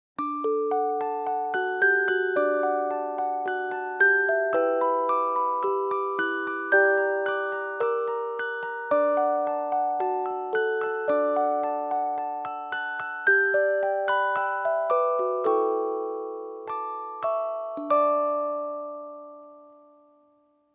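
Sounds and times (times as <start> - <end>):
improvised music box melody: 0.2 - 20.4.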